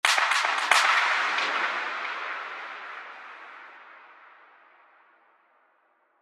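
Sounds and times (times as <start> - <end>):
clap fill: 0.0 - 3.3.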